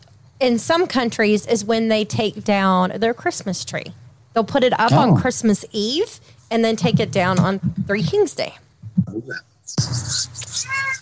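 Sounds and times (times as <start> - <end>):
steady hiss: 0.0 - 11.0
speech: 0.4 - 11.0
murmuring voices: 4.8 - 5.3, 6.7 - 11.0
cat meowing: 10.6 - 11.0.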